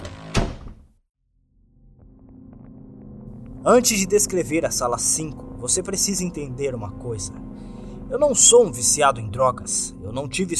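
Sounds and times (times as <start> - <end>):
door banging open: 0.0 - 0.9
speech: 3.6 - 10.5.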